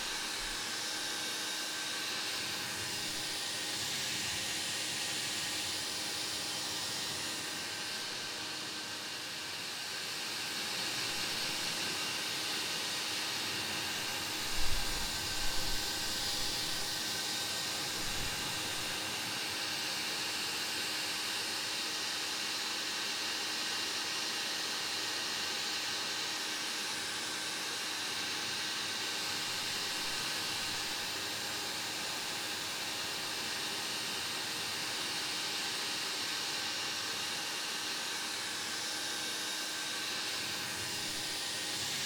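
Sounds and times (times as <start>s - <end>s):
hair dryer blowing: 0.0s - 42.0s.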